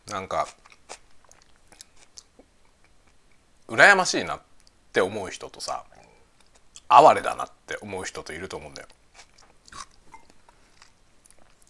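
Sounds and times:
speech: 0:00.1 - 0:00.6, 0:03.7 - 0:05.9, 0:06.9 - 0:09.3
chewing and biting food while eating lunch: 0:00.4 - 0:03.2, 0:08.9 - 0:11.6.

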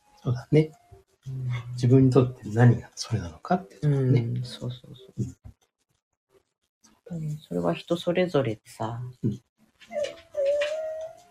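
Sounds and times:
speech: 0:00.2 - 0:05.4, 0:07.1 - 0:10.1
dog whimpering: 0:09.9 - 0:11.2.

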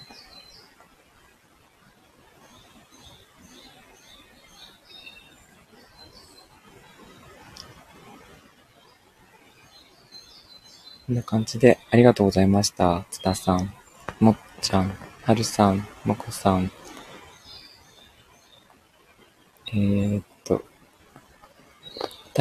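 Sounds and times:
birds chirping in a forest: 0:02.4 - 0:07.7, 0:09.6 - 0:18.7, 0:19.6 - 0:20.6, 0:21.8 - 0:22.3
speech: 0:11.1 - 0:16.8, 0:19.8 - 0:20.7
steady rustling outdoor background: 0:12.4 - 0:22.3.

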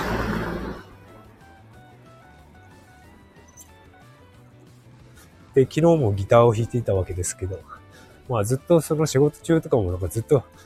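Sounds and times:
cars passing by on a road: 0:00.0 - 0:01.0
speech: 0:05.6 - 0:10.6.

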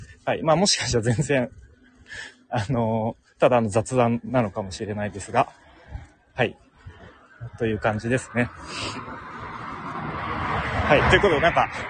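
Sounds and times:
steady low rumble of traffic: 0:00.0 - 0:11.8
speech: 0:00.3 - 0:06.6, 0:07.4 - 0:09.3, 0:10.9 - 0:11.8
laughter: 0:00.8 - 0:01.5
car passing: 0:04.2 - 0:11.8.

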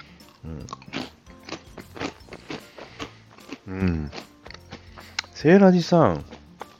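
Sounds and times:
eating thick-cut salted chicken flavour potato chips: 0:00.0 - 0:05.3
speech: 0:00.4 - 0:00.9, 0:03.7 - 0:04.3, 0:05.4 - 0:06.3.

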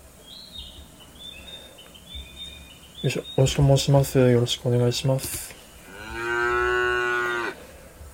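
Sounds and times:
speech: 0:03.0 - 0:05.6
cow mooing: 0:05.8 - 0:07.6.

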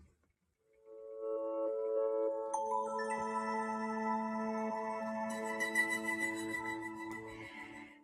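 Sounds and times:
soft calm meditation music with sustained shimmering tones: 0:00.6 - 0:08.0
gentle bell-like chimes: 0:02.5 - 0:07.8.

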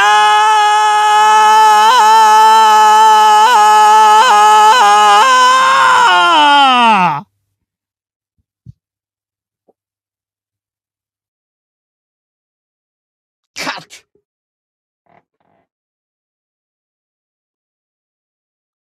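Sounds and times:
person screaming: 0:00.0 - 0:07.3.

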